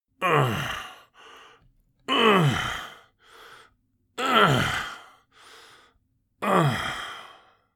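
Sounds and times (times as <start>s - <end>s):
senior male breathing and moaning: 0.2s - 7.6s.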